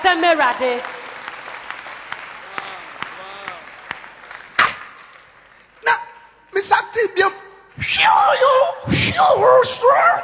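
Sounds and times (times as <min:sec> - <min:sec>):
speech: 0:00.0 - 0:01.0, 0:05.8 - 0:10.2
hands clapping at a church service: 0:00.2 - 0:05.8.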